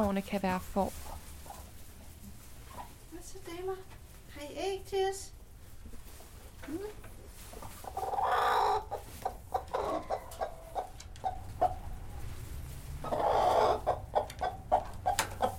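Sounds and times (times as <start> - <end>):
speech: 0.0 - 1.2, 3.2 - 5.4, 6.6 - 7.0
faint hum: 0.0 - 15.5
broody hen clucking on a farm: 0.8 - 3.1, 7.5 - 12.2, 13.0 - 15.5.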